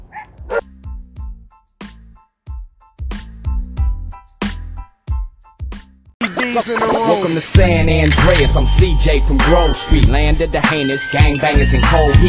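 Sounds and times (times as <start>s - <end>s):
dogs barking: 0.0s - 0.6s
speech: 6.5s - 12.2s.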